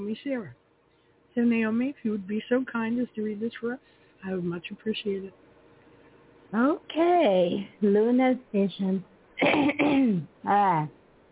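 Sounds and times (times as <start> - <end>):
speech: 0.1 - 0.6, 1.4 - 5.4, 6.5 - 11.0
person clearing throat before reading aloud: 9.4 - 10.3.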